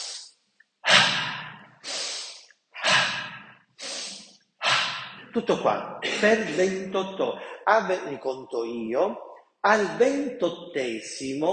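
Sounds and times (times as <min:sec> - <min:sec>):
forceful breaths through the nose during a guided breathing exercise: 0:00.0 - 0:00.3, 0:00.9 - 0:05.3
speech: 0:05.3 - 0:11.5
laughter: 0:05.4 - 0:07.9.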